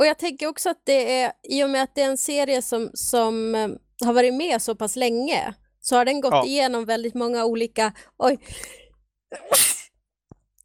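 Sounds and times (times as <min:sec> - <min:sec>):
speech: 0:00.0 - 0:09.8
person sneezing: 0:09.4 - 0:10.0.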